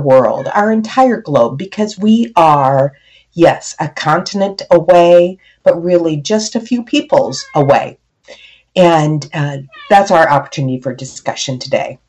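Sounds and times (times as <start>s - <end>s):
speech: 0.0s - 12.0s
cat meowing: 0.2s - 0.6s, 7.3s - 7.9s, 9.6s - 10.1s.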